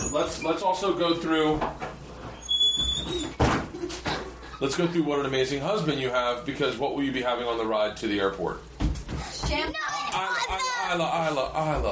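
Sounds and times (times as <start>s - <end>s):
door squeaking: 0.0s - 0.7s, 2.2s - 4.3s
speech: 0.2s - 1.9s, 4.6s - 8.7s, 9.4s - 11.8s
door swinging closed with a solid thud: 2.8s - 4.2s.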